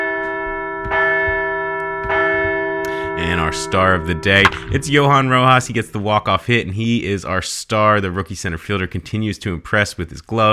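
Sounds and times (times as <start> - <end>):
large bell ringing: 0.0 - 7.0
speech: 3.2 - 10.5.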